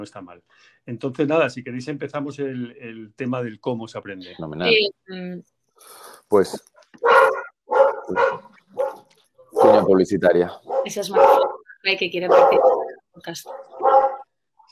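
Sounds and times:
speech: 0.0s - 7.3s, 8.1s - 8.5s, 9.6s - 13.9s
dog barking in a house: 7.0s - 10.0s, 10.6s - 14.3s.

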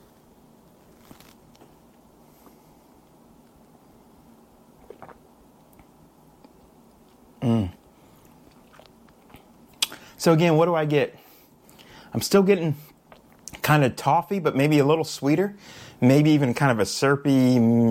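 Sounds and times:
whiskey swishing in mouth: 4.8s - 5.2s
sipping whiskey: 4.8s - 10.2s
speech: 10.2s - 11.2s, 12.2s - 12.9s, 13.7s - 17.8s.

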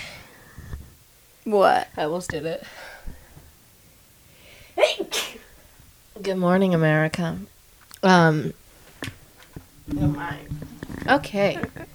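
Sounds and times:
speech: 1.5s - 2.9s, 6.2s - 8.6s, 9.9s - 11.9s
person sneezing: 4.8s - 5.5s.

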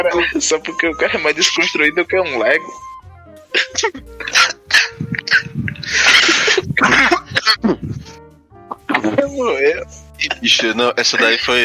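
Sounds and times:
speech: 0.0s - 2.9s, 3.5s - 6.1s, 9.0s - 11.6s
laughter-like voicing: 3.5s - 8.2s
person coughing harshly: 3.6s - 8.1s
breathy throat sounds: 3.6s - 9.1s.

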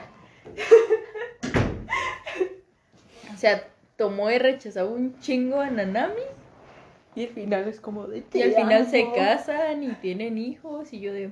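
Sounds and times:
door shutting with a solid thud: 1.4s - 1.9s
speech: 3.4s - 6.4s, 7.2s - 11.2s.

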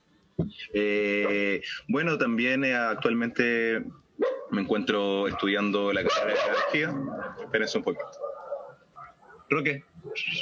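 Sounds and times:
speech: 0.4s - 8.3s, 9.5s - 10.3s
dog barking in yelping bursts: 4.2s - 10.3s.

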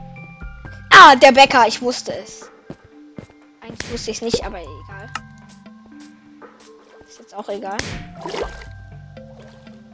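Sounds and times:
speech: 1.0s - 2.5s, 3.9s - 5.2s, 7.3s - 8.7s
video game water splashing and sloshing: 7.8s - 9.8s.

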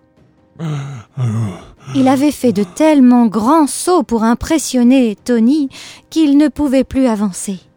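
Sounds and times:
person panting imitating a tired toad: 0.6s - 3.0s
speech: 0.6s - 7.7s.

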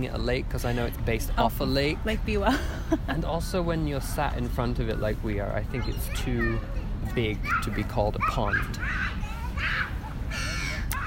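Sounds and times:
speech: 0.0s - 9.8s
low steady outdoor rumble: 0.0s - 11.0s
crow cawing harshly: 9.7s - 11.0s.

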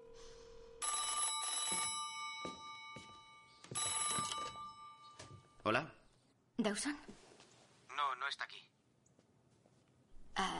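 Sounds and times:
telephone ringing with electronic trilling tone: 0.6s - 5.6s
speech: 5.7s - 6.0s, 6.6s - 7.2s.

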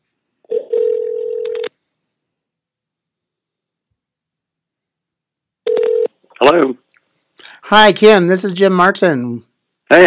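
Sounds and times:
telephone dial tone as a call is dialed: 0.5s - 1.7s, 5.7s - 6.1s
speech: 6.4s - 6.8s, 7.4s - 10.0s.

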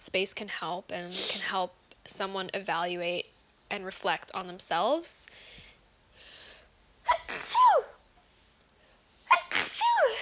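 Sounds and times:
speech: 0.1s - 5.6s
explosive sneezes with a sharp intake: 7.1s - 8.0s, 9.3s - 10.1s.

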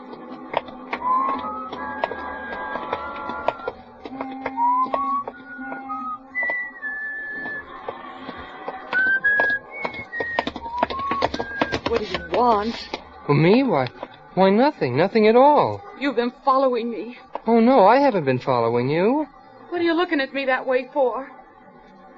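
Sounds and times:
footsteps of a man walking along a street at night: 0.0s - 20.6s
man whistling a wandering lilting tune with sliding notes: 1.0s - 3.7s, 4.5s - 7.7s, 8.9s - 12.4s
speech: 12.4s - 21.4s.

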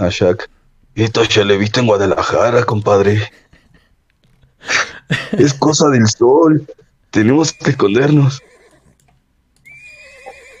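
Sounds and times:
speech: 0.0s - 3.4s, 4.6s - 8.5s
laughter: 4.7s - 5.6s
horse neighing in a snowy city: 7.2s - 9.0s, 9.6s - 10.5s.

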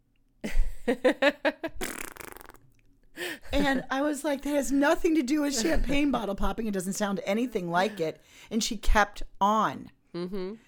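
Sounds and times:
speech: 0.9s - 1.4s, 3.6s - 10.6s
person imitating fart sounds with their voice: 1.8s - 2.8s.

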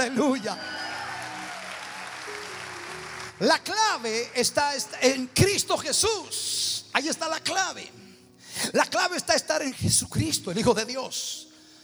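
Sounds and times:
speech: 0.0s - 0.8s, 3.4s - 8.0s, 8.6s - 11.5s
audience applauding: 0.0s - 5.2s
faint sustained organ or keyboard tones: 0.0s - 11.8s.

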